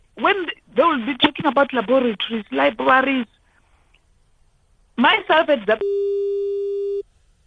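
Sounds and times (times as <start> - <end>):
speech: 0.2 - 3.4, 5.0 - 6.2
telephone busy tone after a call drops: 5.8 - 7.0.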